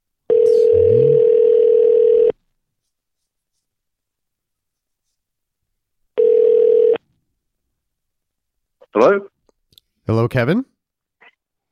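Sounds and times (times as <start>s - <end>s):
ringback tones from an outgoing phone call: 0.3s - 2.3s, 6.2s - 7.0s
speech: 10.1s - 10.7s.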